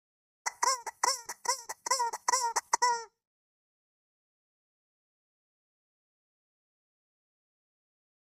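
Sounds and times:
guinea fowl calling: 0:00.5 - 0:03.1.

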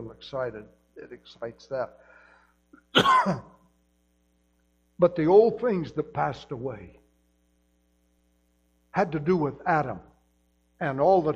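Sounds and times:
speech: 0:00.1 - 0:02.1, 0:02.9 - 0:03.6, 0:05.0 - 0:07.0, 0:09.0 - 0:10.1, 0:10.8 - 0:11.3
harsh rasping cough: 0:02.8 - 0:03.6.

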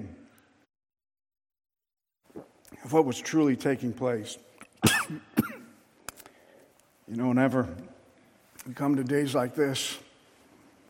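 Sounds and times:
speech: 0:02.8 - 0:04.5, 0:05.1 - 0:05.3, 0:07.1 - 0:07.9, 0:08.6 - 0:10.0
harsh coughs: 0:04.8 - 0:05.8.

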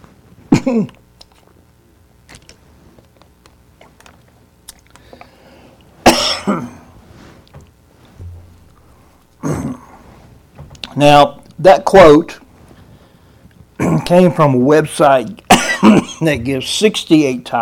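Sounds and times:
person with a lingering cough coughing: 0:00.5 - 0:01.0, 0:06.0 - 0:06.9, 0:09.4 - 0:10.0, 0:13.8 - 0:14.2, 0:15.5 - 0:16.4
throat clearing: 0:00.5 - 0:01.0, 0:09.4 - 0:10.0, 0:13.8 - 0:14.2, 0:15.5 - 0:16.2
speech: 0:00.7 - 0:01.0, 0:11.0 - 0:12.4, 0:14.1 - 0:17.5.

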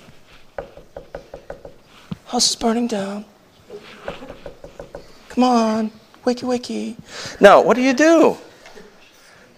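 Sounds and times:
soft knocking: 0:00.5 - 0:02.2, 0:04.0 - 0:05.2
speech: 0:02.3 - 0:03.3, 0:05.4 - 0:08.5.

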